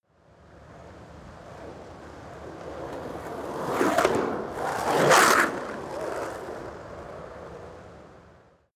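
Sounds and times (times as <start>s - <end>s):
skateboard passing by: 0.3s - 8.6s
skateboard scratch: 2.6s - 7.3s.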